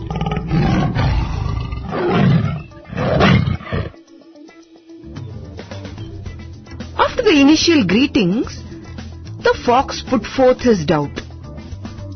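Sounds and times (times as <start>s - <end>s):
lion roaring: 0.0s - 4.0s
speech: 7.5s - 8.6s, 9.4s - 11.2s.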